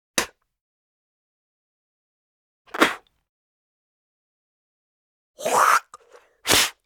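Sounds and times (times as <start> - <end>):
person spitting: 5.4 - 6.8.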